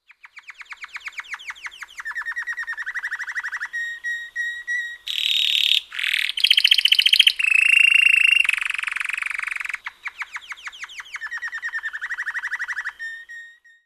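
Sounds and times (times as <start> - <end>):
canary singing: 0.0 - 13.8.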